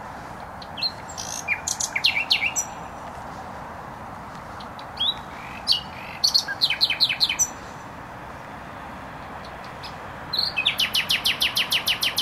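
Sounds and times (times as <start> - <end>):
motorway traffic rumble in Warsaw Poland: 0.0 - 12.2
nightingale singing in bushes in Bródno-Podgrodzie Warsaw Poland: 0.4 - 3.0, 4.5 - 7.9, 9.4 - 12.2.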